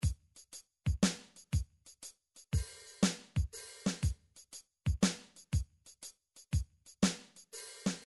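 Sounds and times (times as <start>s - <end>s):
MIDI soul drum patterns: 0.0s - 8.0s.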